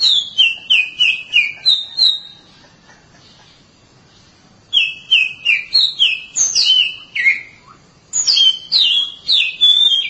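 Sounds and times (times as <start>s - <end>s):
oriental magpie-robin loud whistled song: 0.0s - 2.5s, 4.7s - 10.0s.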